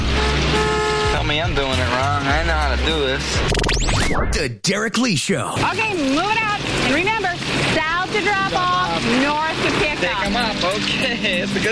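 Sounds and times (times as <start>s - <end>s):
car horns honking in a pickup line: 0.0s - 2.2s
speech: 1.4s - 11.7s.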